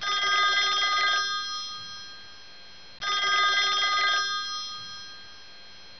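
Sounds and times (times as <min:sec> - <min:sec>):
telephone ringing: 0:00.0 - 0:02.2, 0:03.0 - 0:05.5.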